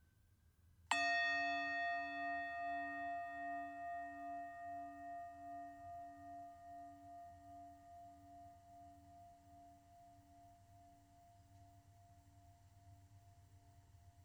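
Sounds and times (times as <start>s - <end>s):
meditation bell ringing: 0.9s - 9.6s.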